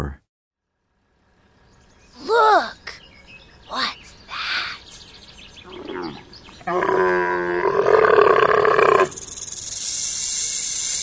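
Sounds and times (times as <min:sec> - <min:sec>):
camel groaning with a rough rumbling tone: 0:05.6 - 0:09.1.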